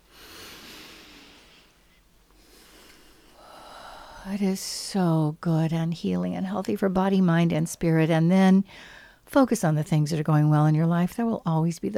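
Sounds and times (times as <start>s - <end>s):
slow very deep breath: 0.0s - 4.3s, 8.7s - 9.3s
speech: 4.2s - 11.9s.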